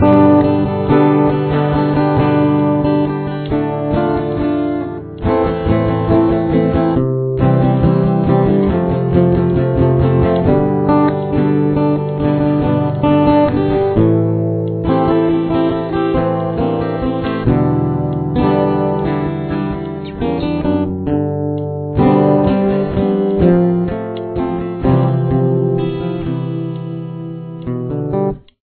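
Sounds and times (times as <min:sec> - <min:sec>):
guitar with chorus effect: 0:00.0 - 0:28.6.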